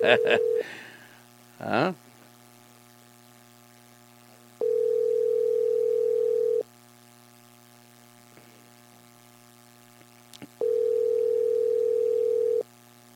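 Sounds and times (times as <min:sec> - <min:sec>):
speech: 0:00.0 - 0:00.9, 0:01.6 - 0:02.0
quiet telephone line hiss: 0:00.0 - 0:01.0, 0:04.6 - 0:06.7, 0:10.6 - 0:12.7
telephone ringback tone: 0:00.1 - 0:00.6, 0:04.6 - 0:06.6, 0:10.6 - 0:12.6.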